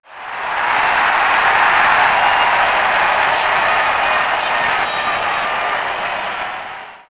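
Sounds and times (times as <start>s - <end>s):
crowd cheering: 0.0s - 7.1s.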